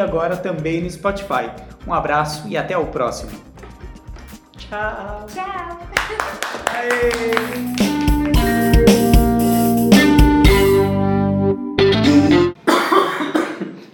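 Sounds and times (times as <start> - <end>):
speech: 0.0 - 3.5, 4.7 - 8.0
loud steady tonal music: 4.7 - 12.6
harsh cough: 12.6 - 13.9.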